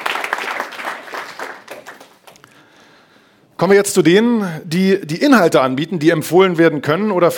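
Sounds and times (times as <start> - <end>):
audience applause welcoming a guest to the stage: 0.0 - 2.4
speech: 3.6 - 7.3.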